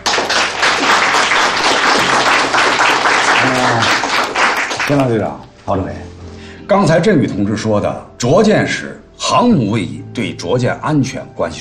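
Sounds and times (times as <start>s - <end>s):
sustained applause for carrier aviators being hailed as heroes: 0.0s - 5.2s
speech: 4.9s - 6.1s, 6.7s - 11.5s.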